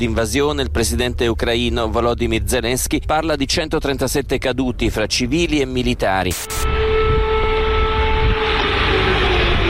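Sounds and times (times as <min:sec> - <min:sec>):
speech: 0:00.0 - 0:06.9
broadband street noise: 0:00.0 - 0:09.6
low rumble: 0:00.0 - 0:09.6
air raid siren droning across a city: 0:06.5 - 0:09.6.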